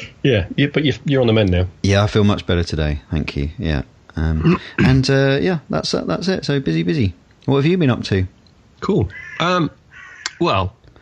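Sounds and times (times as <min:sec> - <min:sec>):
quiet murmur of sound: 0:00.0 - 0:10.9
speech: 0:00.2 - 0:09.8, 0:10.4 - 0:10.8
crows cawing outside a window at night: 0:08.9 - 0:10.7.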